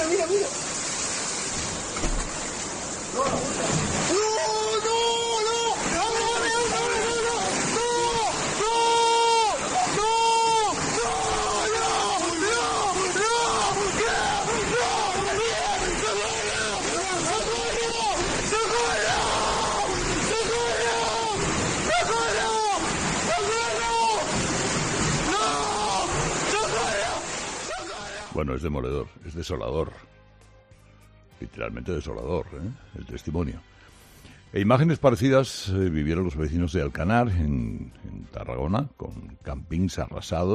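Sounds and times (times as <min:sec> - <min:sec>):
floodwater bursting through the collapsed wall of a house: 0:00.0 - 0:28.4
speech: 0:28.6 - 0:30.0, 0:31.5 - 0:33.8, 0:34.5 - 0:40.5.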